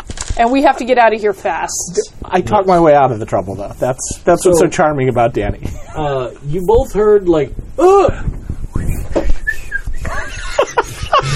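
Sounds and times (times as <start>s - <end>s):
speech: 0.4s - 8.4s
person trying to whistle while smiling: 8.7s - 10.3s
chuckles and snickering: 8.9s - 11.3s.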